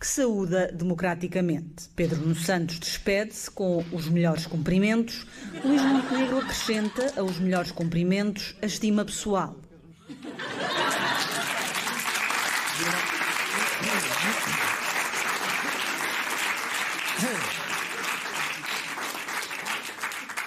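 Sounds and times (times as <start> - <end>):
speech: 0.0 - 9.6
people chuckling: 5.6 - 7.2, 10.0 - 16.2, 17.0 - 19.0
applause from a large audience: 10.4 - 20.4.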